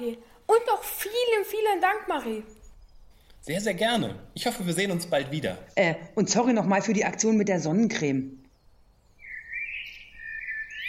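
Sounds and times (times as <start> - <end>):
speech: 0.0 - 2.6, 3.4 - 8.4
soft hiss: 0.0 - 10.3
bird twittering high in a tree crown: 1.6 - 6.2, 8.2 - 10.8.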